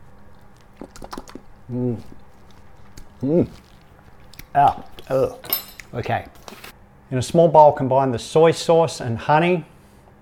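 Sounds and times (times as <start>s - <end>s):
person licking a spoon used to mix Japanese dressing and mayonnaise: 0.0s - 5.9s
speech: 1.7s - 2.2s, 3.2s - 3.6s, 4.5s - 9.7s.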